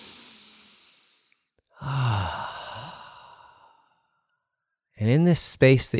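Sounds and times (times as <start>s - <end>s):
slow deep breath during a guided breathing exercise: 0.6s - 4.3s
voiced sigh of exhalation during a guided breathing exercise: 1.7s - 4.1s
speech: 5.1s - 5.9s.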